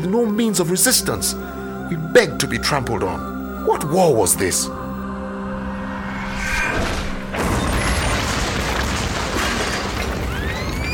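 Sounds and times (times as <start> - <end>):
speech: 0.0 - 4.9
low mechanical drone: 4.8 - 8.0
heavy roar of rumbling, crackling noise: 5.4 - 10.9
loud explosion: 6.4 - 10.9.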